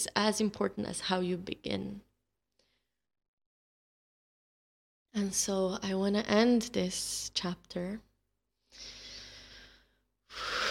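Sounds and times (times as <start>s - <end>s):
speech: 0.0s - 2.1s, 5.2s - 8.1s
deep breathing during a guided relaxation: 8.7s - 10.7s.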